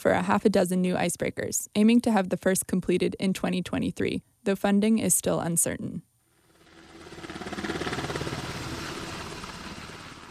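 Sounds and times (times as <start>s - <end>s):
speech: 0.0s - 6.1s
MH-60 helicopter returning from a training flight in Kotzebue: 6.4s - 10.2s.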